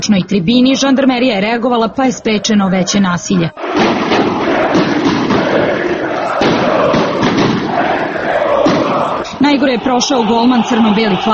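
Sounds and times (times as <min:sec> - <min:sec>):
speech: 0:00.0 - 0:04.1, 0:09.5 - 0:11.3
football fans chanting and shouting at the Red Star stadium in Serbia: 0:00.8 - 0:11.3
firecracker bangs and thuds set off by fans in the north stand: 0:03.6 - 0:09.2.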